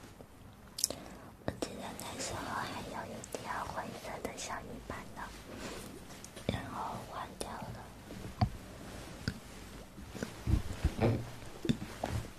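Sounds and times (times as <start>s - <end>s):
faint low rumble: 0.0s - 12.3s
sharp wet mouth clicks and smacks: 0.8s - 1.0s.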